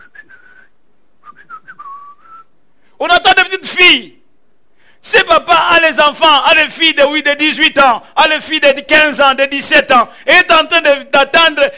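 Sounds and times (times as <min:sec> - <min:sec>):
person whistling a tune while waiting by a parked car in Lubumbashi: 0:00.0 - 0:02.5
speech: 0:03.0 - 0:04.2, 0:05.0 - 0:11.7.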